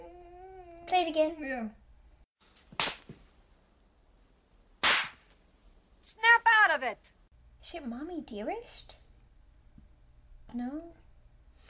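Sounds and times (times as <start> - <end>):
speech: 1.0 - 1.8, 6.2 - 9.0, 10.5 - 11.0
sharp loud slaps in a movie clip: 2.6 - 3.3, 4.8 - 5.4.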